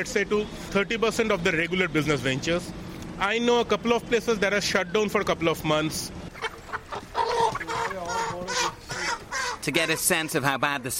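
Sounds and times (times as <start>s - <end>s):
speech: 0.0s - 6.3s, 9.6s - 10.9s
chickens clucking and squawking at a meat market in Kolkata: 6.3s - 10.4s.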